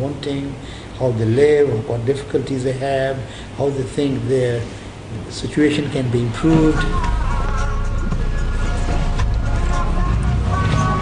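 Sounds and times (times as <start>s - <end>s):
speech: 0.0s - 7.2s
city bus engine droning through the streets of Suva Fiji: 6.2s - 10.9s.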